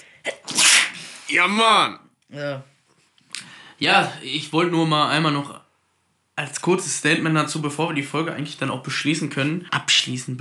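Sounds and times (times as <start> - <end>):
sneeze: 0.2 - 1.3
speech: 1.3 - 2.7, 3.8 - 5.6, 6.4 - 10.3.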